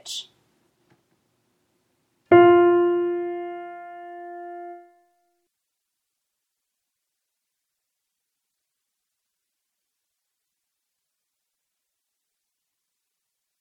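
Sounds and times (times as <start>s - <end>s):
choir soprano singing chromatic scale: 2.3s - 5.0s.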